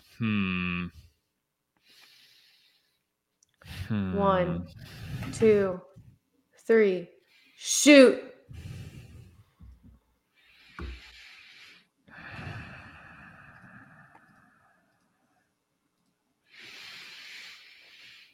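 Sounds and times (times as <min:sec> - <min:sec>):
speech: 0:00.2 - 0:01.0, 0:03.9 - 0:06.0, 0:06.7 - 0:08.7
deep breathing: 0:01.8 - 0:04.1, 0:04.7 - 0:06.0, 0:08.5 - 0:15.5, 0:16.5 - 0:18.3.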